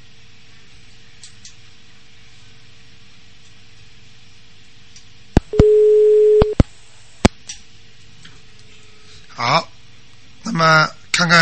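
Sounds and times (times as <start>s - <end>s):
telephone busy signal on a jammed line: 5.5s - 6.6s
speech: 10.6s - 11.4s.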